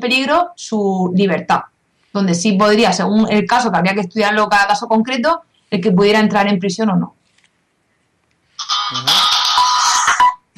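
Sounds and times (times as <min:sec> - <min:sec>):
speech: 0:00.0 - 0:07.2, 0:08.9 - 0:09.3
mobile phone playing an electronic melodic ringtone: 0:08.6 - 0:10.4.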